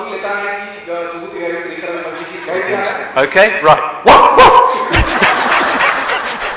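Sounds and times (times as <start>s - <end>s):
speech: 0.2s - 5.2s
dog barking with yelping higher-pitched barks: 4.1s - 4.9s
laughter: 4.5s - 6.5s.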